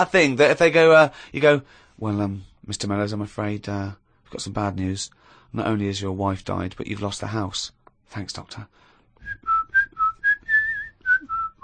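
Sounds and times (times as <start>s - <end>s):
speech: 0.0s - 9.5s
person whistling a bright bouncy tune: 9.2s - 11.6s.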